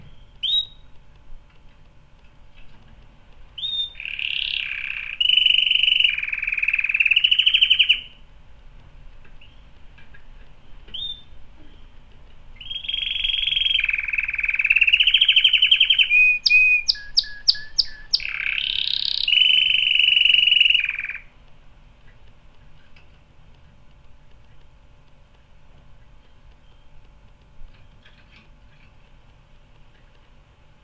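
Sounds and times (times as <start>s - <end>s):
canary singing trills and warbles: 0.0s - 1.0s, 3.5s - 8.2s, 9.4s - 9.8s, 10.4s - 21.3s, 25.9s - 30.2s.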